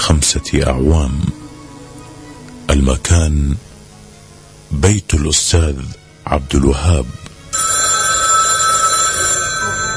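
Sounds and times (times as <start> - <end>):
speech: 0.1 - 1.4, 2.8 - 3.7, 4.7 - 7.6
telephone bell ringing in a house: 7.6 - 9.9.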